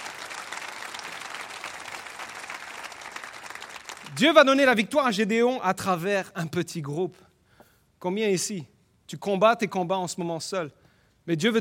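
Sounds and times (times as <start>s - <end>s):
church audience applauding during a service: 0.0s - 4.2s
speech: 4.1s - 7.3s, 8.0s - 11.5s.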